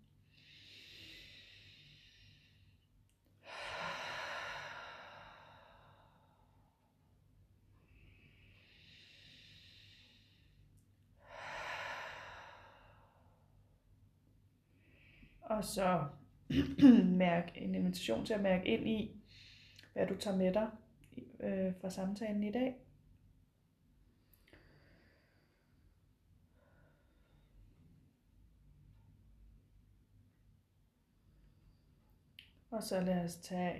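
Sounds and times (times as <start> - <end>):
deep breathing with a hand on the heart: 0.2 - 7.1, 7.7 - 13.8, 14.6 - 15.4, 19.2 - 19.9, 24.0 - 28.2
speech: 15.5 - 19.2, 20.0 - 22.8, 32.7 - 33.7.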